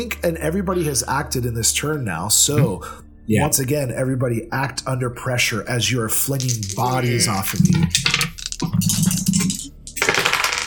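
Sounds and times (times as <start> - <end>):
speech: 0.0 - 8.1
dice rattling and clattering across a hard tabletop: 6.3 - 10.6.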